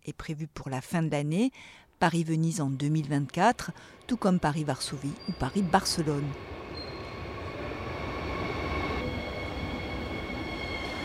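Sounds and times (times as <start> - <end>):
speech: 0.0 - 6.5
night train rumbling as it arrives at a station in Berlin: 2.7 - 11.0
high squealing tones of a night train arriving at a station: 3.6 - 11.0.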